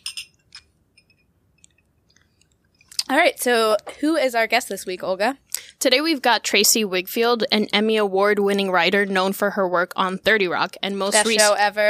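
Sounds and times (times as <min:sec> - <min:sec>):
glasses clinking in a toast: 0:00.0 - 0:00.4
speech: 0:03.1 - 0:11.8.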